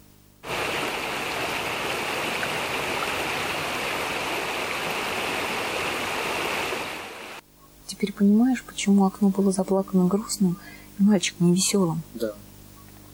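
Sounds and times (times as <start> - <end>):
steady rain: 0.4 - 7.4
speech: 7.9 - 12.5.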